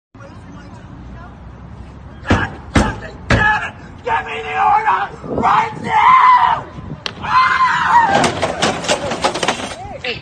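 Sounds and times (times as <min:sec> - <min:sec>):
man shouting: 0:02.2 - 0:06.6
man screaming angrily: 0:03.4 - 0:06.6
speech: 0:04.0 - 0:08.4
items knocked over with clattering knocks and thumps: 0:08.1 - 0:09.8.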